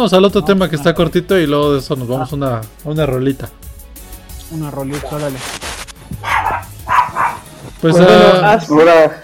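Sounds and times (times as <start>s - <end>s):
speech: 0.0s - 3.6s, 4.5s - 6.3s, 7.8s - 9.2s
dog barking: 6.2s - 7.6s.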